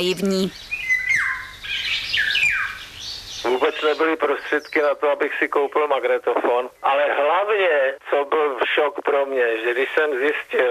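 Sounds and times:
speech: 0.0s - 0.7s, 3.4s - 10.6s
bird singing bright whistled phrases: 0.6s - 3.4s.

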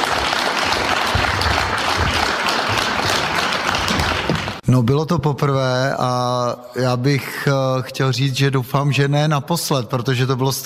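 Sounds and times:
warm applause from an audience: 0.0s - 4.6s
speech: 4.7s - 10.6s.

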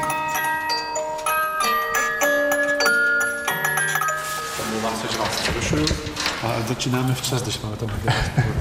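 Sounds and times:
clockmaker's musical clock with rotating cylinder playing a plinking melody: 0.0s - 5.5s
speech: 6.6s - 8.5s.

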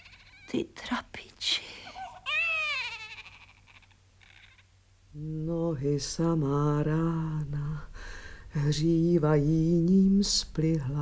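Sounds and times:
speech: 0.5s - 1.0s, 5.2s - 7.9s, 8.5s - 10.9s
boy crying: 2.0s - 4.7s.

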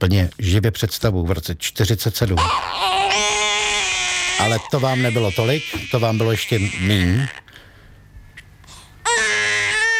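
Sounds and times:
speech: 0.0s - 3.4s, 4.4s - 7.6s
infant wailing high-pitched: 2.4s - 7.5s, 9.0s - 9.9s.

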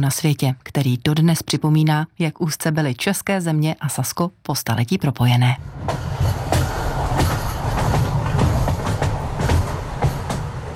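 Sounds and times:
speech: 0.0s - 6.1s
train rolling over a high railway viaduct across the Mulde River: 5.2s - 10.7s
train wheels clacking over rail joints: 5.8s - 10.7s.

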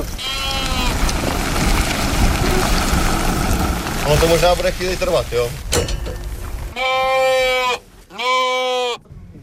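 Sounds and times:
sheep bleating in a trailer: 0.0s - 1.0s, 6.7s - 9.0s
low rumble: 0.0s - 8.2s
speech: 4.1s - 5.9s.

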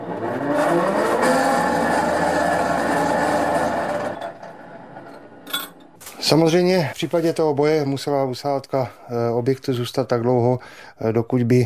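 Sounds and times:
bunker ventilator whirring for air exchange: 0.0s - 5.9s
speech: 6.3s - 11.6s.

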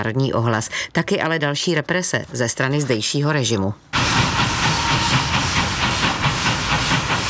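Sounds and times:
speech: 0.0s - 4.3s
steam train hissing and chuffing on rails: 4.0s - 7.2s.

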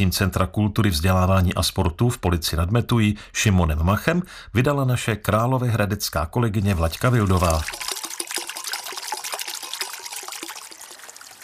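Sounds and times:
speech: 0.0s - 8.0s
water babbling by a small metal mill: 6.6s - 11.4s.

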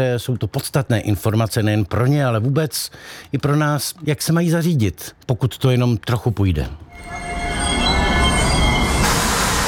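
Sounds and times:
speech: 0.0s - 7.4s
train wheels squealing on the rails at a railway station: 6.9s - 9.6s.

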